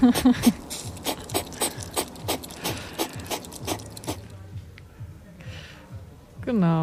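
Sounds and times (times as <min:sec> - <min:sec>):
hedgehog snorting and huffing: 0:00.0 - 0:04.3.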